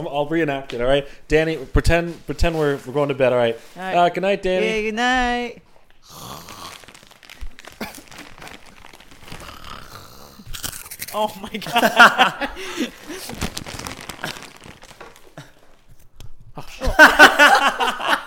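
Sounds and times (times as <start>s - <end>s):
speech: 0.0s - 6.8s, 11.1s - 13.8s, 16.9s - 18.2s
snack bag crinkling: 6.0s - 11.8s, 12.6s - 16.0s
crunching Cheetos cheese puffs: 6.1s - 11.4s, 13.0s - 15.6s
laughter: 11.4s - 13.2s, 16.7s - 18.2s.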